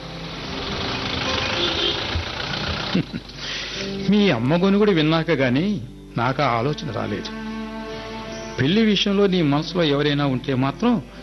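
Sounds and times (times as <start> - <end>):
auto rickshaw engine idling: 0.0 - 5.1
speech: 3.0 - 3.3, 4.1 - 7.4, 8.6 - 11.2.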